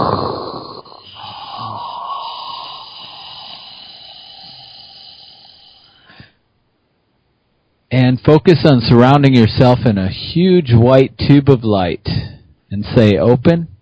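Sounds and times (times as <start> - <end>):
forceful dragon breath exhale: 0.0 - 6.4
person inhaling deeply: 0.0 - 6.4
speech: 8.0 - 13.7.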